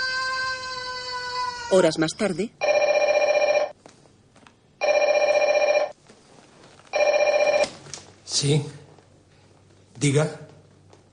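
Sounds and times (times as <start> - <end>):
speech: 1.7 - 2.7, 8.4 - 8.8, 10.0 - 10.4
telephone bell ringing with loud steady electric trill: 2.6 - 3.8, 4.8 - 6.0, 7.0 - 7.7.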